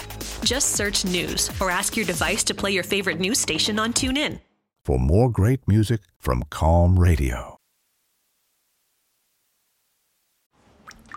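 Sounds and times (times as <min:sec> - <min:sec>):
speech: 0:00.4 - 0:07.6
water dripping from a ceiling vent: 0:10.6 - 0:11.1.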